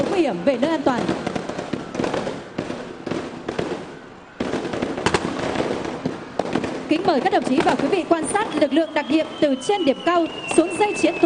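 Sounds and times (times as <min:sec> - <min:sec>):
gunfire in a live anti-terror drill: 0:00.0 - 0:08.4
speech: 0:00.2 - 0:01.3, 0:06.9 - 0:11.2.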